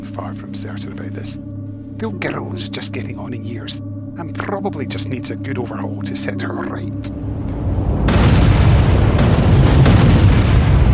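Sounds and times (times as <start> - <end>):
speech: 0.2 - 8.2
debris crackling: 7.2 - 10.9
explosion: 7.2 - 10.9.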